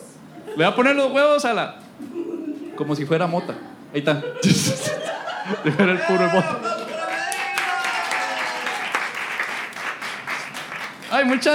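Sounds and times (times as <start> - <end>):
laughter: 0.3 - 0.8, 2.0 - 7.6
speech: 0.6 - 1.8, 2.8 - 6.7, 11.2 - 11.5
room full of people applauding: 6.1 - 11.5.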